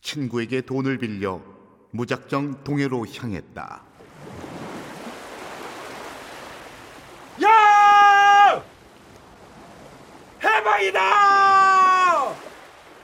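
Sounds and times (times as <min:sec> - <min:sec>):
speech: 0:00.1 - 0:03.9, 0:10.8 - 0:11.3
sea waves washing against the shore of the East Sea in Korea: 0:03.9 - 0:13.0.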